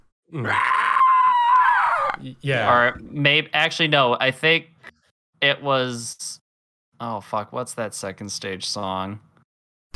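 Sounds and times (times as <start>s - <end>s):
speech: 0.3s - 0.7s, 2.2s - 4.7s, 5.4s - 6.4s, 7.0s - 9.3s
inward harsh raspy vocal scream in metal song: 0.3s - 2.3s.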